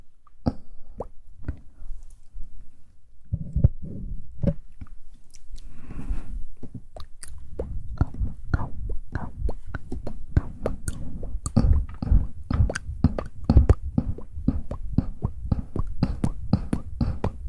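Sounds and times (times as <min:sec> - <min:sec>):
wet mouth clicks and plops: 0:06.6 - 0:17.4.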